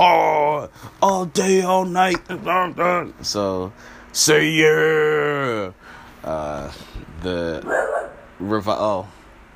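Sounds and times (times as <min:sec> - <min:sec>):
speech: 0:01.0 - 0:09.2
dog barking: 0:07.6 - 0:08.3.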